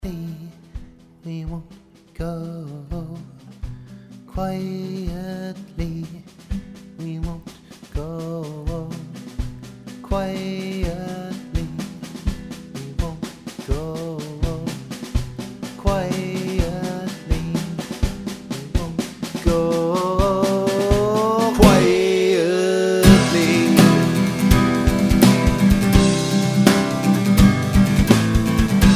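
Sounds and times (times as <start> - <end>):
healthy old drums: 0.0 - 28.9.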